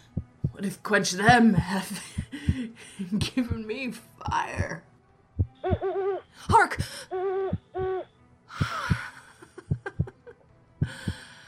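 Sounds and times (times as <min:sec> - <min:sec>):
steady paired heartbeat-like thumps: 0:00.0 - 0:00.6, 0:01.2 - 0:04.8, 0:05.4 - 0:08.0, 0:08.6 - 0:10.2, 0:10.8 - 0:11.2
speech: 0:00.6 - 0:04.9, 0:05.7 - 0:07.4
owl shrieking: 0:05.6 - 0:06.3, 0:07.1 - 0:08.1.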